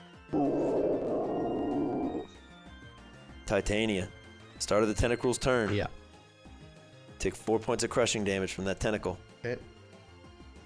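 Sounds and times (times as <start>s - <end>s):
deep guttural monster roaring in pain: 0.3s - 2.3s
speech: 3.5s - 6.0s, 7.2s - 9.7s.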